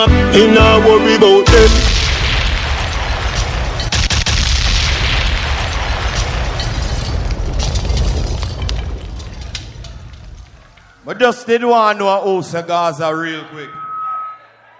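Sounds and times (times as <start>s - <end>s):
speech: 0.0s - 2.0s, 11.1s - 13.8s
sharp gunshot sound effect cracks: 1.5s - 8.6s
constant heavy booming rumble: 1.5s - 10.8s.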